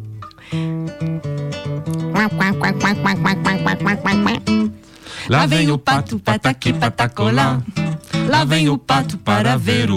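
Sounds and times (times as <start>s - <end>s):
speech: 0.5s - 1.1s, 2.2s - 9.9s
duck quacking: 2.0s - 4.8s.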